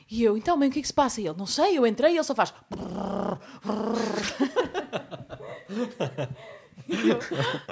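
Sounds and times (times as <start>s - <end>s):
speech: 0.1s - 5.0s, 5.7s - 7.6s
person imitating cat purring with raspy voiced rumbles: 2.7s - 4.2s
person chuckling: 3.7s - 7.6s.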